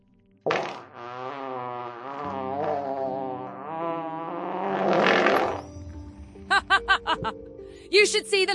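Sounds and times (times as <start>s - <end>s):
long loud drawn-out fart: 0.4s - 5.8s
speech: 7.1s - 8.5s.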